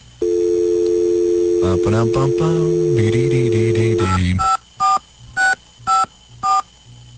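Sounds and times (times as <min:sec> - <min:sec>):
steady phone dial tone: 0:00.2 - 0:04.2
touch-tone beeps as a number is dialed: 0:00.2 - 0:06.6
person speaking: 0:01.6 - 0:04.4.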